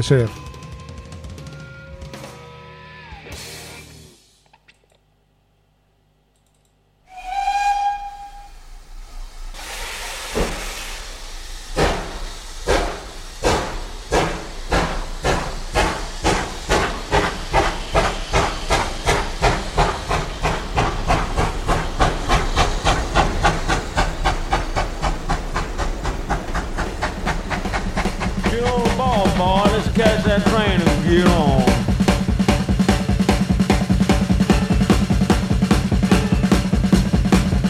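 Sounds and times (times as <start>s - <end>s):
steam train whistle blast: 7.1s - 12.2s, 28.4s - 33.1s, 34.2s - 35.2s, 35.8s - 36.9s
loud hissing steam from a steam train: 7.1s - 37.6s.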